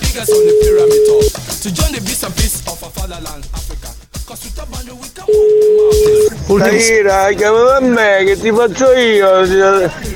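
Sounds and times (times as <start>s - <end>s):
speech: 0.2s - 1.0s, 1.6s - 3.6s, 6.5s - 10.1s
steady electronic tone of a phone call reaching an answering machine: 0.2s - 1.4s, 5.3s - 6.3s.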